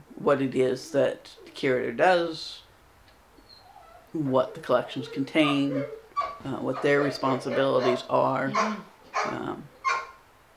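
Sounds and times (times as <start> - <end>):
speech: 0.2 - 2.6, 4.1 - 9.7
dog barking: 5.6 - 10.2.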